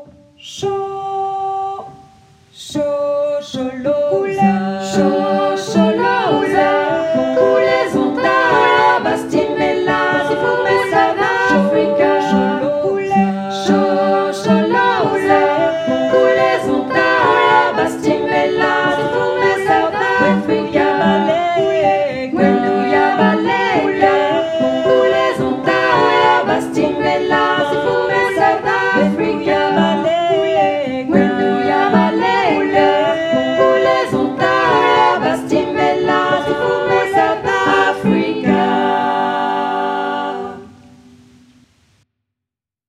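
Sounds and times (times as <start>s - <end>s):
full choir singing: 0.6s - 41.3s.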